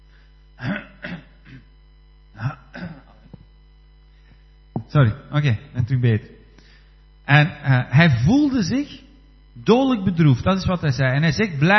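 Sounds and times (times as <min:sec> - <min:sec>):
steady mains hum: 0:00.0 - 0:11.7
man clearing throat during a sermon: 0:00.6 - 0:03.4
speech: 0:04.9 - 0:06.4, 0:07.3 - 0:09.0, 0:09.6 - 0:11.7.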